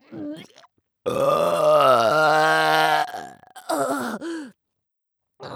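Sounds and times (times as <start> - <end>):
man burping loudly: 0.1 - 4.1.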